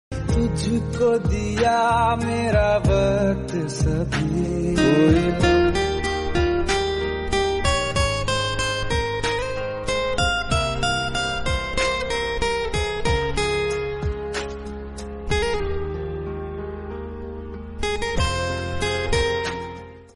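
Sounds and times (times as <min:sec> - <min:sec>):
guitar instrumental: 0:00.1 - 0:20.1.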